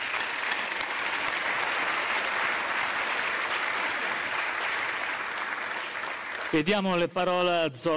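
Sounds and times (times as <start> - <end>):
audience applause: 0.0 - 6.8
speech: 6.5 - 7.9.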